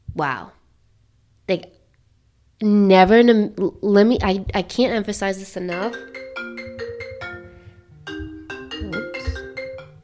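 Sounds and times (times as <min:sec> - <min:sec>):
speech: 0:00.2 - 0:00.6, 0:01.5 - 0:01.8, 0:02.6 - 0:06.3
phone ringing with incoming call melodic ringtone: 0:05.7 - 0:10.0.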